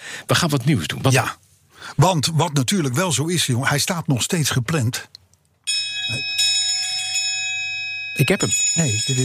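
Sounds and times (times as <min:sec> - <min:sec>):
speech: 0:00.3 - 0:05.2, 0:06.1 - 0:06.4, 0:08.2 - 0:09.2
bright metallic bell ringing at a button press: 0:05.7 - 0:09.2.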